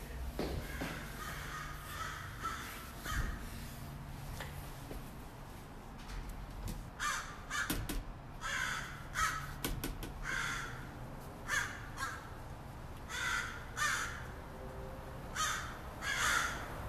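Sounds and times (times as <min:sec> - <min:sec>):
outdoor rustling: 0:00.0 - 0:16.8
footsteps: 0:00.3 - 0:05.7
crows cawing overhead: 0:00.5 - 0:03.4, 0:07.0 - 0:12.4, 0:13.1 - 0:14.4, 0:15.3 - 0:16.8.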